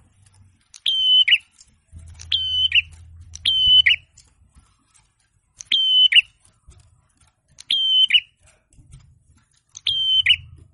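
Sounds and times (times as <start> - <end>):
young forest prinia singing whistled phrases with burry endings: 0.8 - 1.6, 2.2 - 4.1, 5.6 - 6.4, 7.6 - 8.4, 9.8 - 10.7
low steady hum: 1.5 - 10.7.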